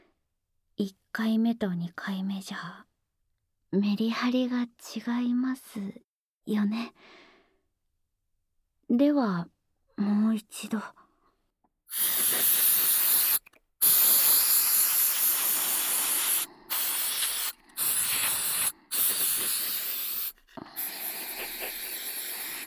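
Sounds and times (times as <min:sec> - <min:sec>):
speech: 0:00.8 - 0:02.9, 0:03.7 - 0:07.3, 0:08.9 - 0:11.0, 0:11.9 - 0:12.3
spray bottle spraying diluted liquid: 0:11.9 - 0:22.6.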